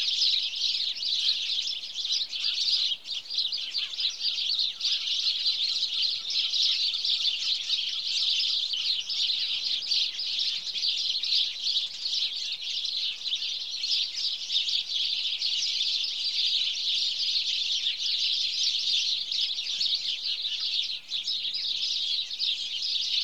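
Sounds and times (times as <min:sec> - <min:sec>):
house sparrow Passer domesticus chorus chirping: 0:00.0 - 0:23.2.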